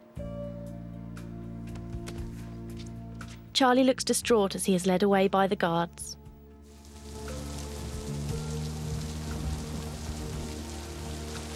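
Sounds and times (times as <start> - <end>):
speech: 3.6 - 6.2
steady rain falling outside an office: 6.7 - 11.5.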